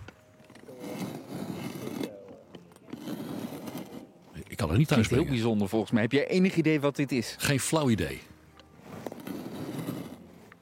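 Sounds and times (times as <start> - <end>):
soil auger boring into stony ground: 0.0 - 4.1, 8.8 - 10.6
speech: 4.6 - 8.3.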